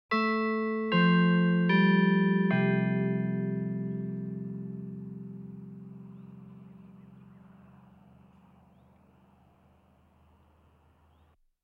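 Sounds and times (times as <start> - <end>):
church tower clock in the countryside: 0.2 - 8.7.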